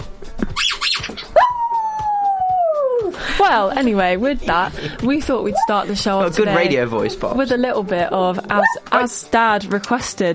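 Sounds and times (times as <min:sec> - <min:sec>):
dog yipping: 0:00.6 - 0:02.9, 0:05.5 - 0:05.8, 0:08.6 - 0:09.1
dog howling: 0:01.4 - 0:03.1, 0:05.5 - 0:05.8, 0:08.6 - 0:09.1
speech: 0:03.5 - 0:10.3.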